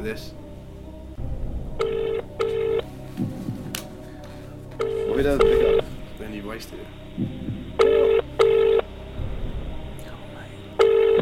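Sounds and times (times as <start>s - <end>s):
speech: 0.0s - 0.4s, 5.2s - 7.3s
low rumble: 0.0s - 11.2s
telephone ringback tone: 1.8s - 2.8s, 4.8s - 5.8s, 7.8s - 8.9s, 10.8s - 11.2s.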